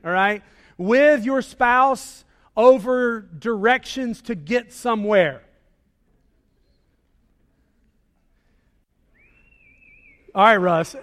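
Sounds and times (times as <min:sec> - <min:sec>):
speech: 0:00.1 - 0:05.5, 0:10.4 - 0:11.0
person in the audience whistling: 0:09.1 - 0:10.4.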